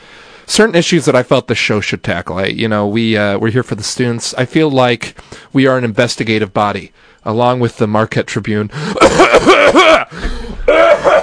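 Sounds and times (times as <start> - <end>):
speech: 0.5 - 11.2
person coughing: 8.8 - 11.2.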